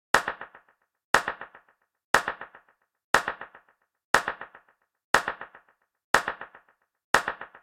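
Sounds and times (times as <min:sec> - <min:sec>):
dancefloor pop clap: 0:00.1 - 0:07.6.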